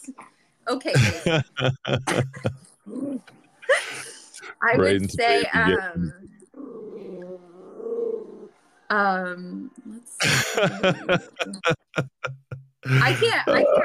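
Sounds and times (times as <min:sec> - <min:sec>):
speech: 0:00.0 - 0:03.4, 0:04.4 - 0:06.3, 0:08.9 - 0:13.8
laughter: 0:01.0 - 0:02.6, 0:03.7 - 0:06.1, 0:10.2 - 0:13.8
small dog growling: 0:06.5 - 0:08.5.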